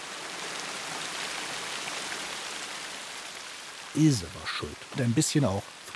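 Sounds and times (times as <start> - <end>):
steady dense rain pattering onto a surface: 0.0 - 5.9
speech: 3.9 - 5.9.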